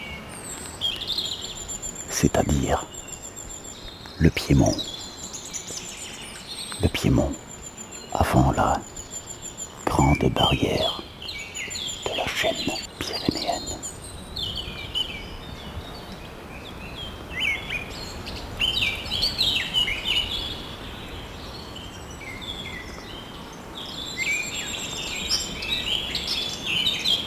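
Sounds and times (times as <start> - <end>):
birds singing and chirping in a forest at Sainte-Croix-Volvestre in the Pyrenees foothills: 0.0 - 27.2
steady rustling ambient background: 1.7 - 5.8, 6.7 - 11.2, 12.0 - 14.0
speech: 2.2 - 3.0, 4.2 - 4.9, 6.8 - 7.4, 8.1 - 8.9, 10.0 - 11.0.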